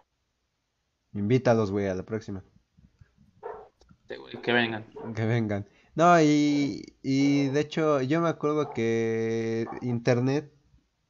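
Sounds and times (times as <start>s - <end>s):
speech: 1.2s - 2.5s, 4.1s - 10.6s
dogs barking: 3.4s - 5.4s, 7.4s - 7.7s, 8.6s - 9.0s, 9.6s - 9.9s.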